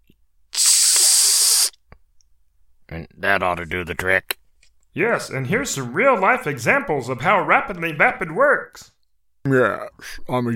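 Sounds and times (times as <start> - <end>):
aerosol spray can hissing: 0.6 - 1.7
speech: 3.0 - 4.4, 5.0 - 10.5.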